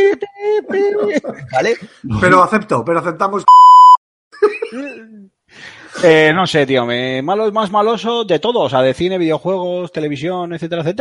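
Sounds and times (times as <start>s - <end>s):
laughter: 0.0s - 2.0s, 4.4s - 5.2s
speech: 0.7s - 10.9s
censor bleep tone: 3.5s - 4.0s.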